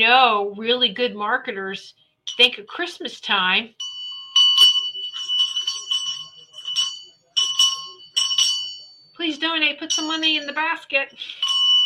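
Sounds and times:
speech: 0.0 - 3.8, 9.2 - 11.5
bright handbell ringing in quick bursts of shaking: 2.3 - 2.6, 3.8 - 11.8.

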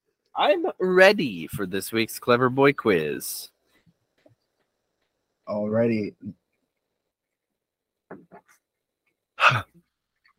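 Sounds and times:
speech: 0.4 - 3.5, 5.5 - 6.4, 9.5 - 9.8
burp and yawn at the same time: 9.4 - 9.8
soft short vocal noises: 9.4 - 9.8.

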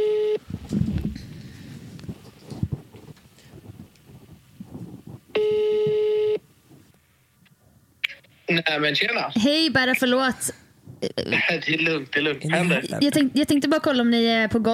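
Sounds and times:
phone ringback tone: 0.0 - 0.4, 5.4 - 6.4
shuffling: 0.4 - 7.3
speech: 8.5 - 14.7.

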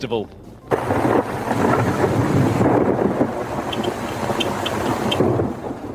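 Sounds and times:
heavy rain downpour: 0.7 - 5.9.

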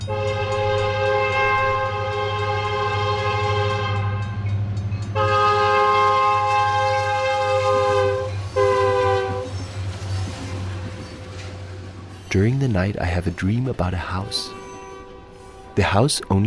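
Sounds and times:
freight train horn blaring in long blasts behind a motel: 0.0 - 4.5, 5.1 - 9.7, 14.0 - 16.4
freight train engines and wheels rumbling behind a motel: 0.0 - 16.4
speech: 12.3 - 14.6, 15.8 - 16.4.

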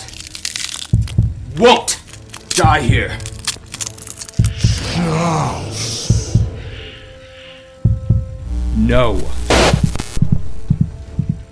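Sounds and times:
deep thumping heartbeat sound effect: 1.0 - 1.5, 2.6 - 3.2, 4.4 - 4.8, 6.1 - 6.7, 7.8 - 11.5
speech: 1.6 - 2.0, 2.6 - 3.3, 5.0 - 5.9, 8.8 - 9.8
steady humming drone: 8.3 - 10.8
loud rushing noise: 8.4 - 10.8.

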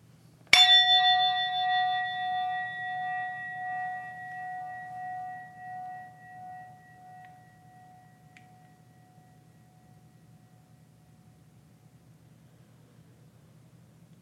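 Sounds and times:
single meditation bell ringing: 0.5 - 11.3.

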